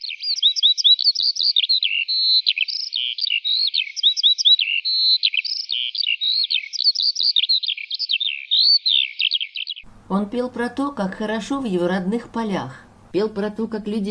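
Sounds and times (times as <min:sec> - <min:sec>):
skylark singing: 0:00.0 - 0:09.9
speech: 0:01.2 - 0:01.6, 0:07.0 - 0:07.6, 0:10.1 - 0:14.0.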